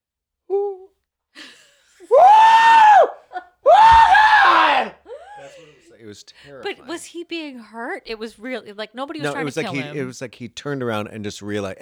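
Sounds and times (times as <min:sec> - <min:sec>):
person imitating a terrified scream: 0:02.1 - 0:05.0
laughter: 0:05.0 - 0:06.8, 0:09.2 - 0:10.2
speech: 0:06.1 - 0:11.7.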